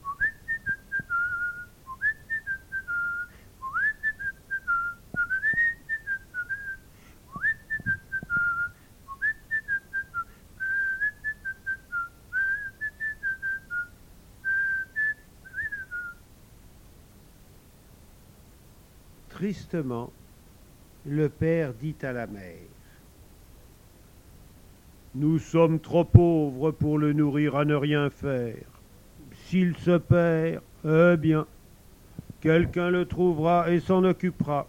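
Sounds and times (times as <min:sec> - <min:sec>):
boy whistling a lilting tune: 0:00.0 - 0:16.2
speech: 0:19.4 - 0:20.2, 0:21.0 - 0:22.7, 0:25.2 - 0:28.7, 0:29.5 - 0:31.5, 0:32.4 - 0:34.6.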